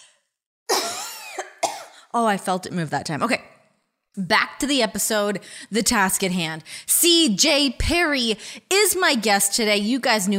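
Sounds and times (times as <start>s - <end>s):
harsh raspy throat-clearing cough: 0.7s - 2.0s
speech: 2.1s - 3.6s, 4.2s - 10.3s.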